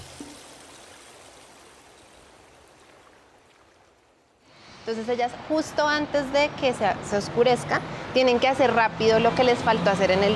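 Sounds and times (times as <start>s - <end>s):
rushing river water with gurgling: 0.0s - 5.5s
speech: 4.9s - 10.3s.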